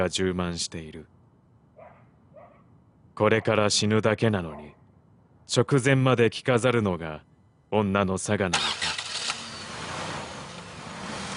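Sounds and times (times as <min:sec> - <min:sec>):
speech: 0:00.0 - 0:01.2, 0:03.2 - 0:04.8, 0:05.5 - 0:08.8
car engine idling: 0:08.6 - 0:11.3.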